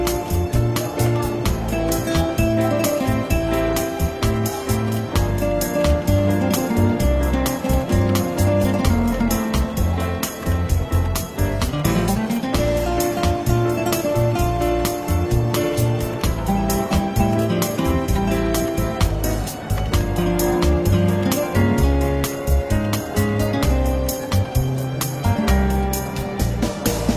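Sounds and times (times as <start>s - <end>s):
relaxed jazz music in a bookshop café: 0.0s - 27.1s
steady low bass line: 0.0s - 27.1s.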